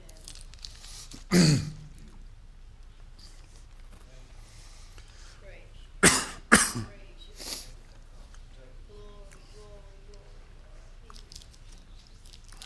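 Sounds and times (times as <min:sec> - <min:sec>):
harsh throaty coughs clearing the throat: 0:01.3 - 0:01.9, 0:06.0 - 0:07.0.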